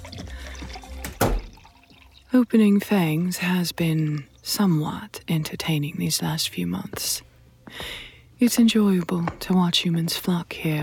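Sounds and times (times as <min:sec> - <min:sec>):
drink poured from a glass decanter into a glass: 0:00.0 - 0:02.3
low hum: 0:01.2 - 0:10.8
speech: 0:02.3 - 0:10.8.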